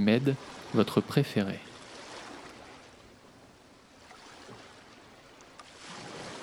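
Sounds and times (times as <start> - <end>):
speech: 0.0 - 1.7
ocean waves on a beach: 0.0 - 6.4.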